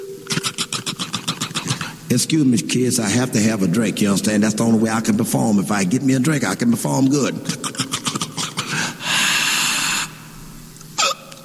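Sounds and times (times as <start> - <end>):
man hiccuping: 0.2 - 2.0, 7.4 - 8.8, 11.0 - 11.4
man's quick noisy breaths and rasping snort-like inhale: 0.2 - 2.1, 8.4 - 11.2
speech: 2.1 - 7.7.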